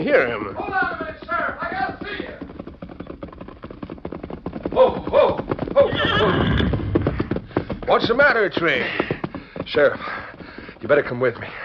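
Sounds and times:
speech: 0.0s - 0.8s, 7.9s - 9.1s, 9.7s - 10.2s, 10.9s - 11.6s
ridden horse galloping fast: 0.0s - 11.6s
horse whinnying: 4.6s - 7.4s.

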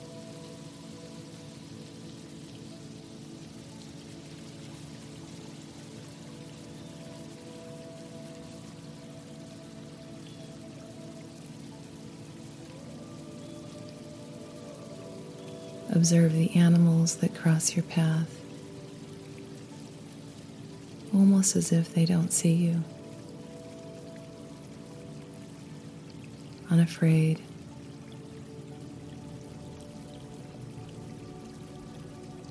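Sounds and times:
low sustained tonal hum: 0.0s - 32.5s
water trickling: 0.0s - 32.5s
speech: 16.0s - 18.4s, 21.2s - 23.0s, 26.7s - 27.5s.

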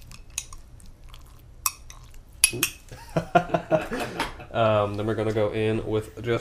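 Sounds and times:
little spoon muddling fruit juice in a glass with sherry: 0.0s - 2.9s
speech: 2.5s - 3.5s, 4.6s - 6.3s
laughter: 2.9s - 4.6s.

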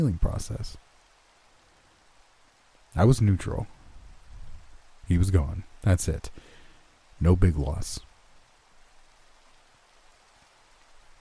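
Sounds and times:
speech: 0.0s - 0.9s, 3.0s - 3.8s, 5.1s - 6.5s, 7.2s - 8.1s
steady rain pouring: 0.0s - 11.1s.

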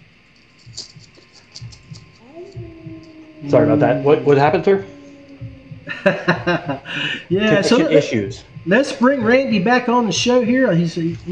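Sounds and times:
constant electrical hum: 0.0s - 11.3s
heartbeat sound effect thumping in lub-dub pairs: 0.6s - 11.3s
brief rising tone: 2.2s - 7.7s
speech: 3.4s - 5.0s, 6.0s - 11.3s
laughter: 5.8s - 8.1s.

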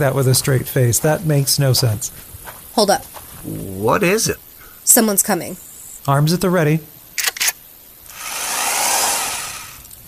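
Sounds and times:
speech: 0.0s - 6.9s
cordless drill on 25-year-old batteries whirring: 8.1s - 9.9s.

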